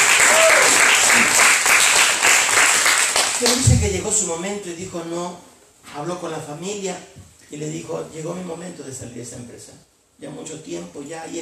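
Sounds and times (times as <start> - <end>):
audience cheering with shouts and whoops: 0.0 - 1.3
audience clapping loudly: 0.0 - 3.8
speech: 3.4 - 11.4.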